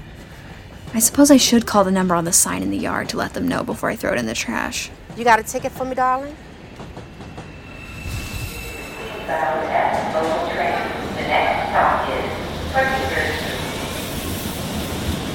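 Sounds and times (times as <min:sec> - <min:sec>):
subway train rumbling with rhythmic clatter over the tracks: 0:00.0 - 0:15.3
speech: 0:00.9 - 0:06.5, 0:09.3 - 0:10.3
brief metallic squeals: 0:07.4 - 0:09.6
faint high whine: 0:07.6 - 0:10.8.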